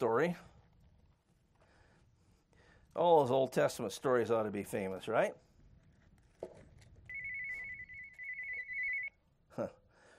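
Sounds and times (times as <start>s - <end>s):
speech: 0.0s - 0.5s, 3.0s - 5.4s, 9.6s - 9.8s
cell phone ringing with a steady high electronic tone: 7.1s - 9.2s.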